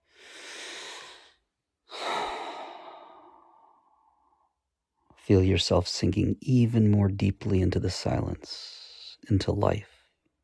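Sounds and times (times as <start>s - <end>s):
long deep breath: 0.0s - 4.6s
speech: 5.3s - 9.9s.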